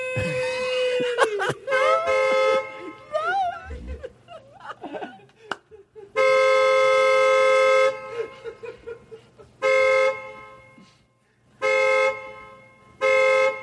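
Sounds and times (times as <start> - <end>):
laughter: 0.1 - 6.2, 8.0 - 9.6
car horn honking: 1.5 - 3.5, 6.1 - 8.7, 9.5 - 13.6.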